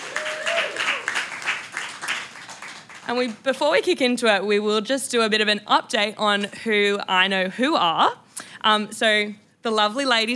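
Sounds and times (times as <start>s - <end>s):
crowd applauding: 0.0s - 3.4s
speech: 3.1s - 10.3s.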